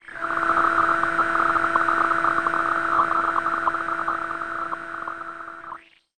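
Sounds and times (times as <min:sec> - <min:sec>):
science fiction electronic radio static: 0:00.0 - 0:05.8.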